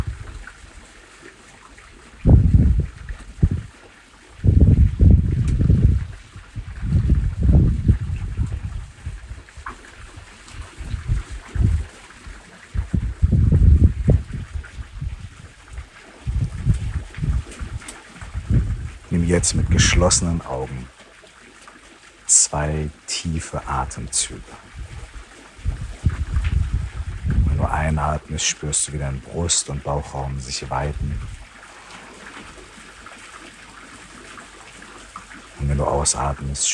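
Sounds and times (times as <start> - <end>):
low rumbling wind gusts: 0.0 - 0.4, 2.2 - 3.7, 4.3 - 20.9, 23.6 - 32.6
water flowing: 0.0 - 36.7
speech: 19.4 - 21.0, 22.5 - 24.8, 27.7 - 31.4, 35.8 - 36.7.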